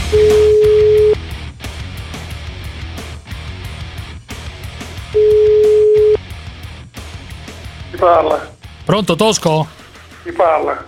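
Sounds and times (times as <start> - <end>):
telephone tone of an outgoing call: 0.2 - 1.2, 5.2 - 6.2
speech: 8.0 - 10.8.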